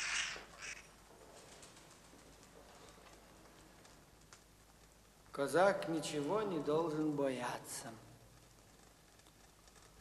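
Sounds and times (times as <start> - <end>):
black raven cawing: 0.0 - 0.9
speech: 5.4 - 8.1.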